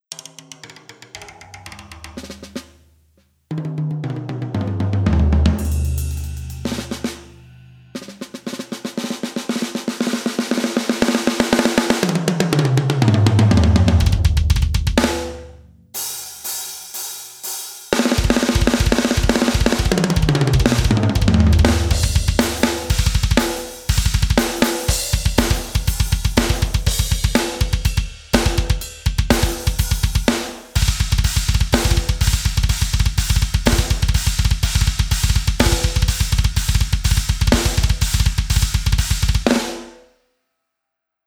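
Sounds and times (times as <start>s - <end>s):
high snare drum: 3.6s - 40.0s
plastic kick drum: 13.1s - 15.8s, 18.2s - 39.8s.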